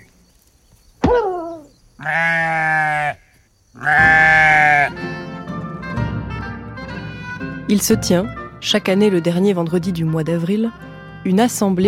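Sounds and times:
sheep bleating: 0:02.0 - 0:05.0
speech: 0:07.7 - 0:11.8.

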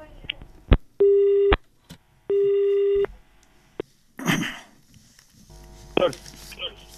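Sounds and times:
telephone line beeps as a call connects to a radio phone-in: 0:01.0 - 0:01.6, 0:02.3 - 0:03.1.

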